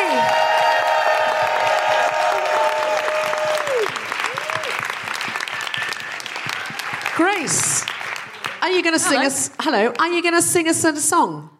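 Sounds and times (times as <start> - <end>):
brief cheer: 0.0 - 7.2
large audience applause: 0.0 - 10.1
speech: 8.8 - 11.5.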